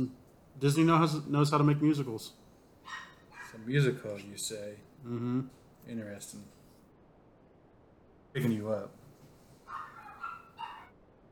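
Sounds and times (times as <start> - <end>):
speech: 0.0 - 6.6, 8.4 - 9.0
dog giving short yappy barks: 2.8 - 3.9, 9.7 - 11.0.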